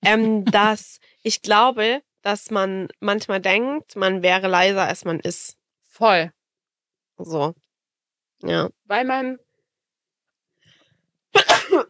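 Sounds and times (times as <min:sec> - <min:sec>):
speech: 0:00.0 - 0:06.4, 0:07.2 - 0:07.6, 0:08.4 - 0:09.4, 0:11.4 - 0:11.8
laughter: 0:00.2 - 0:00.8
sneeze: 0:11.4 - 0:11.8.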